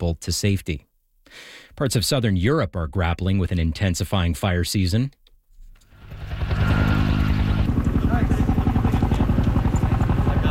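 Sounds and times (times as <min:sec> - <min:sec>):
speech: 0:00.0 - 0:05.2
helicopters dropping water on a wildfire: 0:05.9 - 0:10.4.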